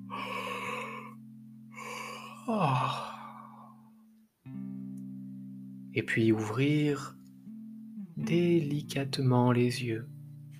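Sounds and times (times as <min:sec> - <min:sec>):
deep inhales: 0:00.0 - 0:03.9
loud drawn-out yawn with a groan while stretching: 0:01.8 - 0:03.8
speech: 0:02.5 - 0:03.2, 0:06.0 - 0:07.2, 0:08.2 - 0:10.1.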